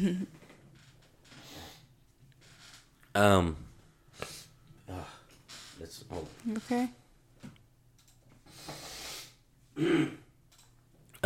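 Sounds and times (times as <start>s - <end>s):
speech: 0.0s - 0.4s, 3.2s - 3.6s, 6.1s - 7.0s, 9.8s - 10.2s
person sniffling from allergies: 8.5s - 10.2s.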